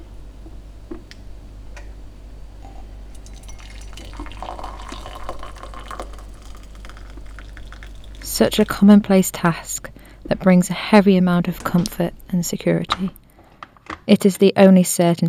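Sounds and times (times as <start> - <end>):
low constant hum: 0.0 - 15.0
hot water poured into a mug: 3.1 - 12.4
speech: 8.4 - 13.2, 14.1 - 15.2.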